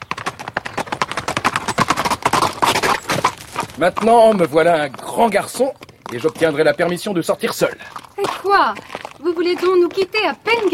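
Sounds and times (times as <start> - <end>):
hoofbeats of two horses setting off at a brisk pace in a park: 0.0 - 10.7
speech: 3.8 - 10.7.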